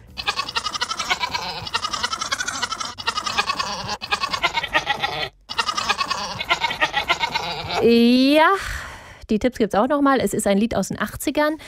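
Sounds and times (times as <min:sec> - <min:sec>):
goat bleating a song melody: 0:00.1 - 0:08.0
speech: 0:07.8 - 0:08.7, 0:09.3 - 0:11.6.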